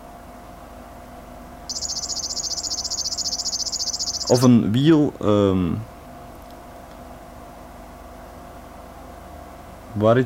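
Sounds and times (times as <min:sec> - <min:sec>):
faint hum: 0:00.0 - 0:10.2
river warbler singing a buzzing trill: 0:01.7 - 0:04.5
speech: 0:04.3 - 0:05.9, 0:10.0 - 0:10.2.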